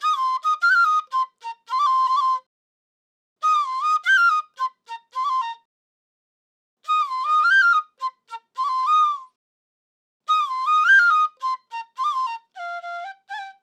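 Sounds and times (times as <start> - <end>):
hip hop flute in D major: 0.0 - 2.5, 3.4 - 5.7, 6.9 - 9.4, 10.3 - 13.6.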